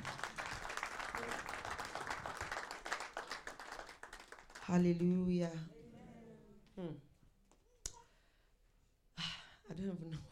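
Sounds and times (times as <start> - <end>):
audience clapping: 0.0 - 4.9
speech: 4.7 - 5.8, 6.8 - 7.1, 9.8 - 10.3.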